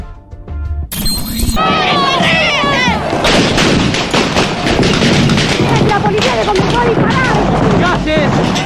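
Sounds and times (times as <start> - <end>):
gunshots in a chaotic street clash: 0.9 - 8.6
clattering impacts: 1.0 - 8.6
crowds shouting in a street clash: 1.6 - 6.2.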